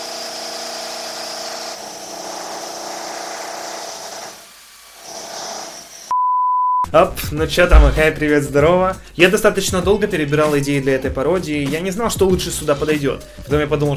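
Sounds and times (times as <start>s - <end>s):
electric drill drilling: 0.0s - 6.1s
speech: 6.9s - 13.9s.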